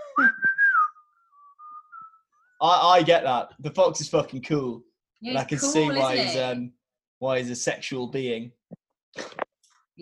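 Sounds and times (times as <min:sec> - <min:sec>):
person whistling a short melody: 0:00.0 - 0:02.6
speech: 0:02.6 - 0:08.6, 0:09.2 - 0:09.4.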